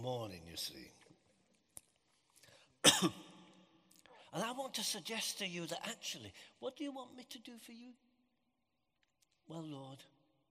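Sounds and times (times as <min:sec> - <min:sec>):
speech: 0:00.1 - 0:01.0, 0:02.8 - 0:03.3, 0:04.3 - 0:08.0, 0:09.5 - 0:10.2
single harsh loud cough: 0:02.8 - 0:03.3.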